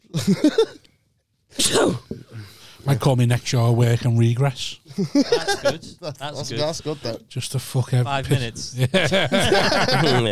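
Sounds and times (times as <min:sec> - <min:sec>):
laughter: 0:00.1 - 0:00.8, 0:04.9 - 0:07.2, 0:08.2 - 0:10.3
speech: 0:00.3 - 0:00.8, 0:02.9 - 0:10.3
person sneezing: 0:01.5 - 0:02.3.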